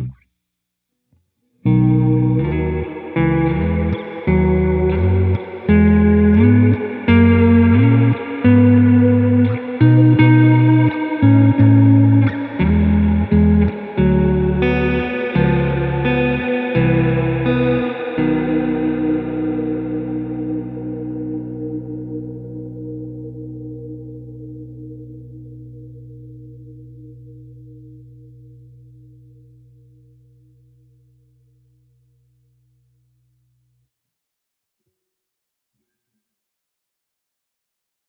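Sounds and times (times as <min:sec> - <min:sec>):
ghostly baritone voice with reverb: 0:01.8 - 0:24.0.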